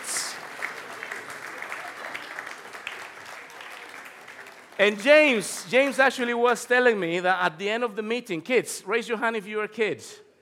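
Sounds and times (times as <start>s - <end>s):
audience applause: 0.0s - 6.0s
speech: 4.8s - 10.2s.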